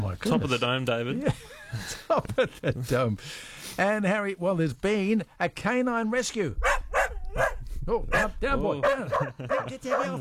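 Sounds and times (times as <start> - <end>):
speech: 0.1 - 10.2
laughter: 1.2 - 3.1, 8.8 - 10.2
dog barking: 6.6 - 10.2.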